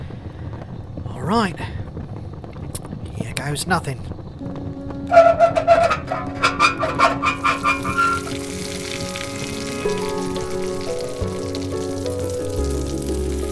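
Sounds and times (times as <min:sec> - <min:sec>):
speech: 0:01.3 - 0:01.8, 0:03.4 - 0:08.8
boiling molten lead glugging down a pipeline into a radium-lined tank: 0:05.1 - 0:13.4.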